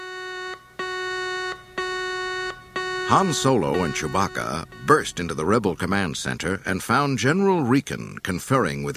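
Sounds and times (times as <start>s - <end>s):
warning alarm blaring through subterranean corridors: 0.0s - 6.6s
speech: 3.1s - 8.9s.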